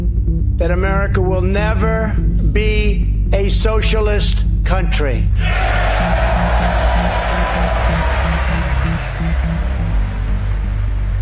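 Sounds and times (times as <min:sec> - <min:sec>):
speech: 0:00.6 - 0:08.0
large crowd applauding: 0:05.4 - 0:11.2.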